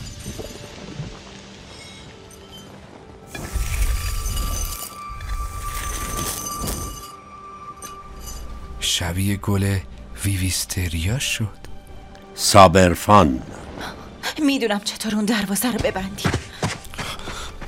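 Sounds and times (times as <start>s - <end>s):
glass clinking and tinkling: 1.7s - 8.7s
speech: 9.0s - 11.6s, 12.4s - 13.6s, 14.4s - 16.4s.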